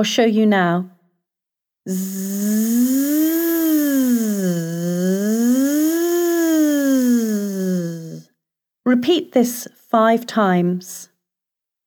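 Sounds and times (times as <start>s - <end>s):
speech: 0.0s - 1.0s, 1.8s - 5.4s, 8.9s - 11.1s
person humming a buzzing zzz imitating a bee as a vocal exercise: 1.9s - 8.3s.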